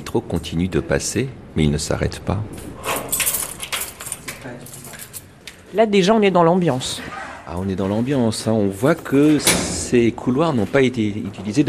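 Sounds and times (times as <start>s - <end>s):
speech: 0.1s - 2.9s, 4.4s - 4.8s, 5.7s - 11.6s
metal grille doors rattling and clanking open: 2.6s - 5.2s, 9.2s - 9.9s.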